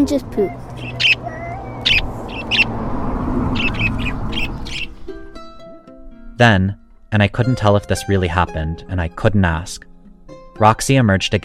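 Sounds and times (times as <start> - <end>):
speech: 0.0 - 1.2, 6.4 - 9.9, 10.6 - 11.4
flock of parakeets chirping: 0.0 - 5.1.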